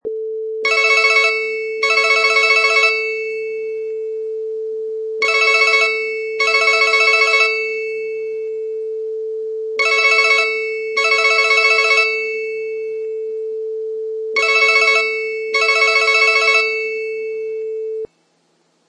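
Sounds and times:
cell phone ringing: 0:00.6 - 0:18.1.

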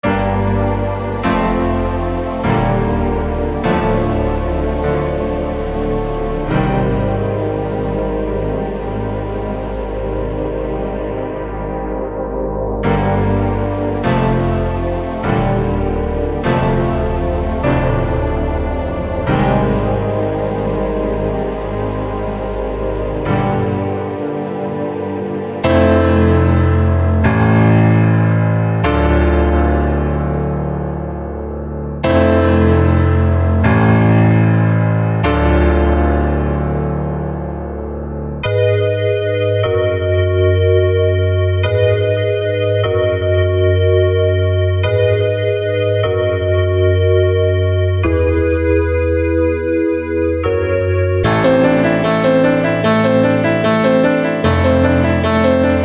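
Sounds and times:
trap piano chords: 0:00.0 - 0:55.8.

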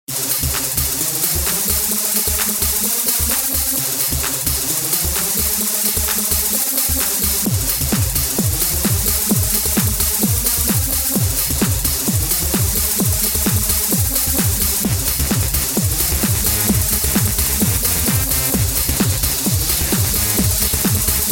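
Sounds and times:
electro music: 0:00.1 - 0:21.3.

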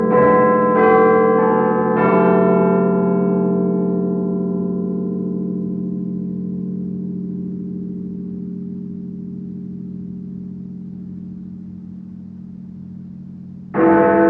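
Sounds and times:
Big Ben bell: 0:00.0 - 0:14.2.

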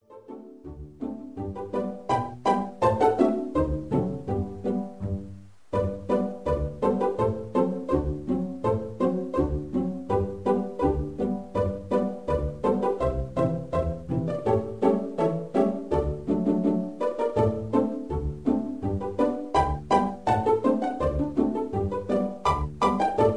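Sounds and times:
pizzicato strings polka: 0:00.0 - 0:23.3.

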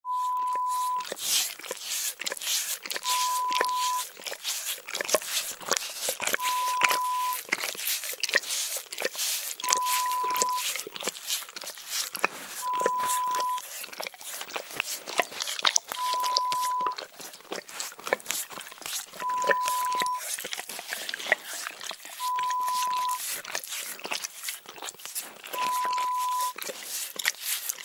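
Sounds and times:
dog licking: 0:00.1 - 0:27.8.

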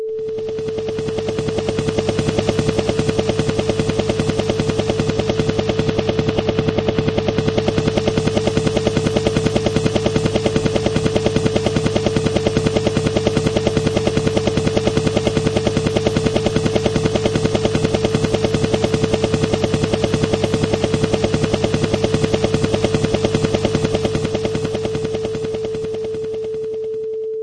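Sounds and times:
helicopter: 0:00.2 - 0:27.3.

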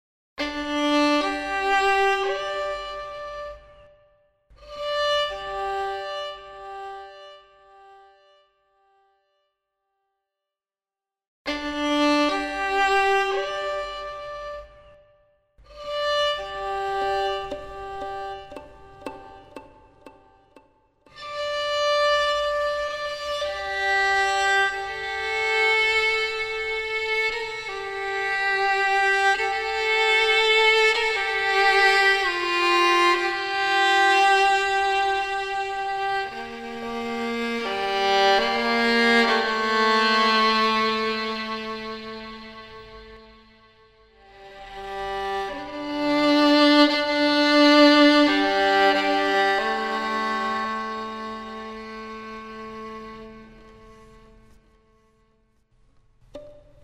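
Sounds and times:
solo violin: 0:00.4 - 0:08.5, 0:11.5 - 0:55.3, 0:56.2 - 0:56.8.

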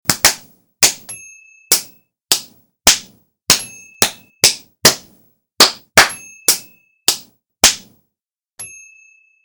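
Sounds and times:
slap fight: 0:00.1 - 0:01.0, 0:01.7 - 0:08.0.

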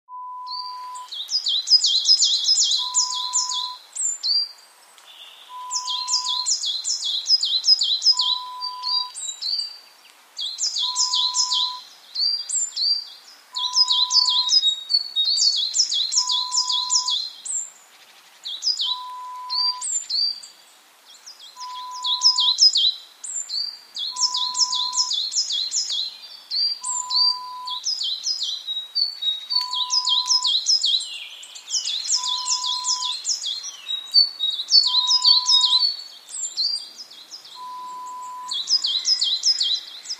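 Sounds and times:
forest ambience: 0:00.1 - 0:40.1.

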